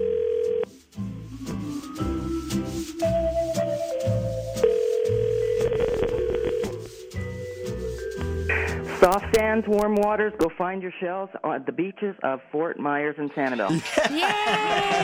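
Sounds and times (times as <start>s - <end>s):
steady telephone dial tone: 0.0s - 0.7s, 4.5s - 6.9s
busy rhythmic music: 0.7s - 10.5s
telephone line dialing tones: 4.6s - 6.8s
speech: 9.0s - 15.0s
laughter: 13.5s - 15.0s.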